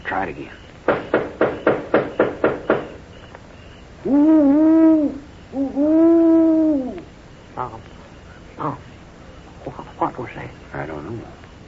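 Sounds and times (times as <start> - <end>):
speech: 0.1 - 0.6, 4.0 - 4.4
owl hooting: 0.5 - 11.5
sharp knocks: 0.8 - 3.0.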